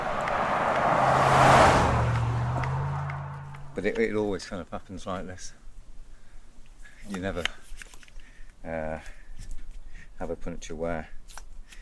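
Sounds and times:
large vehicle speeding past on a road: 0.0 - 4.0
speech: 3.8 - 5.6, 7.1 - 7.6, 8.6 - 9.2, 10.2 - 11.4.

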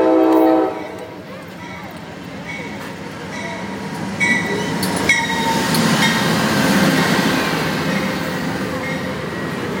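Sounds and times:
passenger train horn blast: 0.0 - 1.0
passenger train wheels rumbling on rails arriving at station: 0.0 - 9.7.

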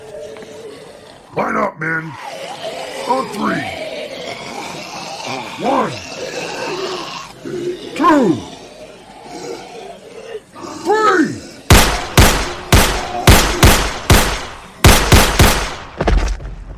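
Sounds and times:
strained wavering vocal groan: 0.0 - 1.4, 2.0 - 11.7
speech: 1.3 - 2.5, 3.1 - 3.8, 5.6 - 6.5, 8.0 - 8.5
gunshots from soldiers firing on command: 11.7 - 16.0.

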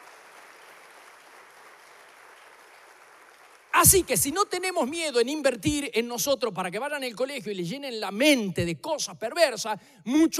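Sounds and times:
crowd applauding: 0.0 - 4.2
speech: 3.8 - 10.3.

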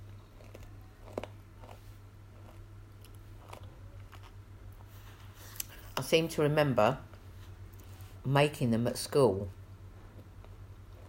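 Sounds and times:
crisp snack being chewed: 0.0 - 4.9, 10.1 - 11.0
low steady hum: 0.0 - 11.0
speech: 6.0 - 7.1, 8.2 - 9.6.

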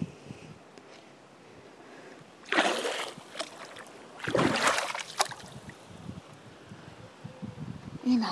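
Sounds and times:
water splashing as feet are dipped into a swimming pool: 2.4 - 5.8.

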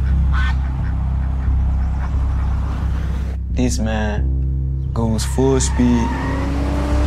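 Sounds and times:
goose honking: 0.0 - 2.6
loud steady low rumble: 0.0 - 5.1
speech: 3.6 - 4.4, 5.0 - 6.5.

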